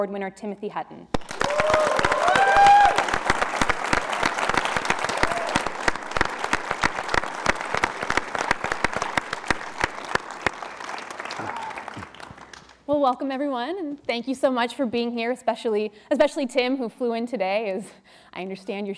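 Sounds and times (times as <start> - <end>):
speech: 0.0 - 2.1, 12.9 - 18.9
roomful of people clapping: 1.1 - 12.9
whoops and cheers: 1.3 - 3.3, 5.0 - 5.8, 11.2 - 12.2.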